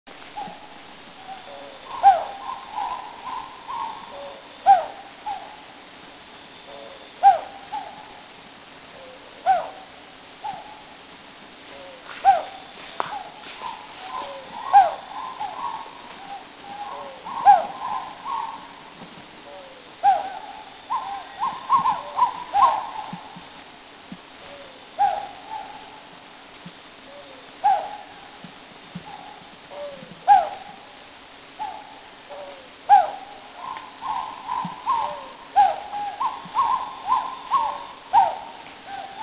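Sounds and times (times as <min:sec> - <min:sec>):
Philippine hawk-owl Ninox philippensis calling in Subic: 0:01.3 - 0:05.5, 0:06.7 - 0:08.1, 0:09.0 - 0:10.8, 0:11.7 - 0:18.8, 0:19.5 - 0:23.6, 0:29.0 - 0:30.9, 0:31.6 - 0:39.2.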